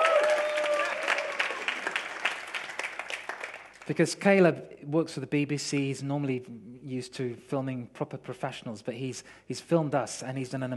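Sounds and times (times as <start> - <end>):
crowd applauding: 0.0 - 3.9
speech: 3.9 - 10.7.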